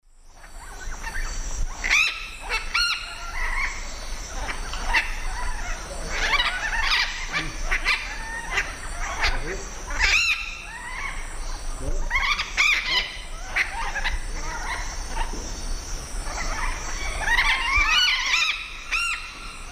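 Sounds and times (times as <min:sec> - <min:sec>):
group of Orthopsitta manilata calling in the Eastern Lowlands of South America: 0:00.3 - 0:19.6.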